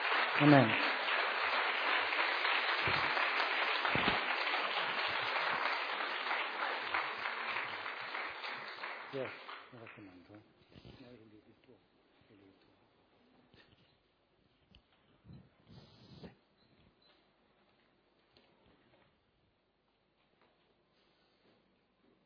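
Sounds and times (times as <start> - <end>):
church congregation applauding: 0.0 - 10.4.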